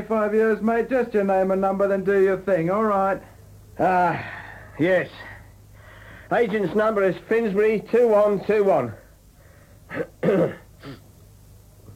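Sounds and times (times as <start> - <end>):
speech: 0.0 - 5.3, 6.3 - 9.0, 9.9 - 11.0
rough raspy throat clearing during an audition: 9.9 - 11.1.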